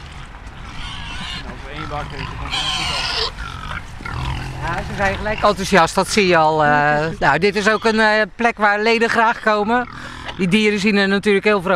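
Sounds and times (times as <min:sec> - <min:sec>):
pigs squealing and grunting: 0:00.0 - 0:06.4, 0:07.4 - 0:08.2, 0:09.0 - 0:10.7
speech: 0:01.5 - 0:03.4, 0:04.6 - 0:11.7.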